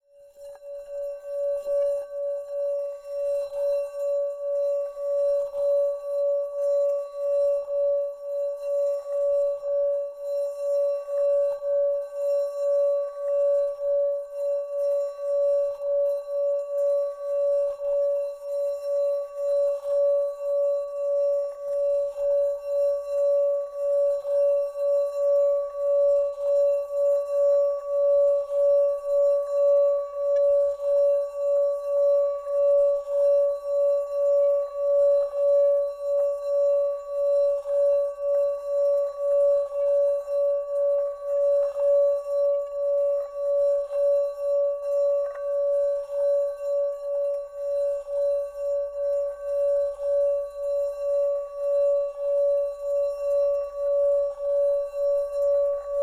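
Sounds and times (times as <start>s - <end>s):
medium painted Himalayan singing bowls: 0.0s - 56.0s.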